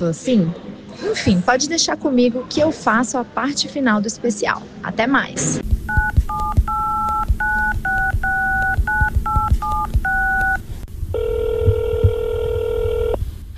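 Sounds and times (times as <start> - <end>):
speech: 0.0 - 5.7
telephone keypad dialing tones: 5.9 - 10.6, 11.2 - 13.2.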